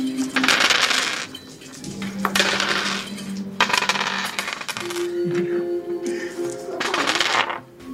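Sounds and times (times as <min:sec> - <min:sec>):
assorted gem-like dice from a bag clattering together: 0:00.2 - 0:05.2, 0:06.4 - 0:07.6.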